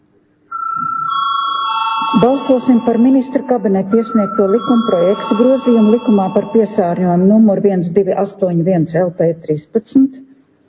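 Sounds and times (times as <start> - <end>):
electronic bell ringing in a parliament chamber to call a vote: 0.5 - 7.6
speech: 2.1 - 10.3.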